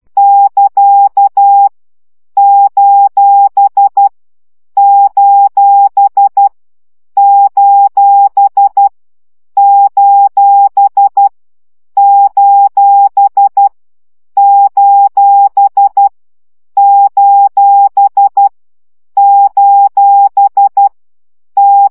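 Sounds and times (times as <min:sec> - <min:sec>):
CW Morse code practice beeps: 0:00.2 - 0:01.7, 0:02.4 - 0:04.1, 0:04.8 - 0:06.5, 0:07.2 - 0:08.9, 0:09.6 - 0:11.3, 0:12.0 - 0:13.7, 0:14.4 - 0:16.1, 0:16.8 - 0:18.5, 0:19.2 - 0:20.9, 0:21.6 - 0:21.8.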